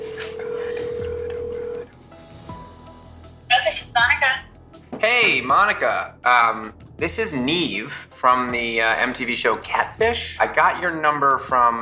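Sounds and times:
telephone keypad beeps: 0:00.0 - 0:01.8
steady held telephone tone: 0:00.0 - 0:01.9
speech: 0:05.0 - 0:11.7.

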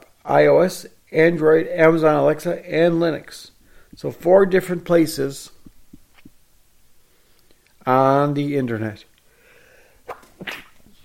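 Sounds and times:
speech: 0:00.2 - 0:05.6, 0:07.9 - 0:09.1, 0:10.4 - 0:10.6
faint sneeze: 0:10.0 - 0:11.0.

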